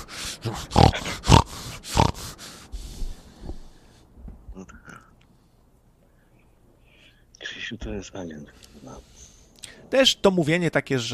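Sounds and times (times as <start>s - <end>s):
person snorting and grunting like a pig: 0.0s - 2.5s
speech: 0.4s - 1.1s, 7.7s - 9.1s, 9.9s - 11.1s.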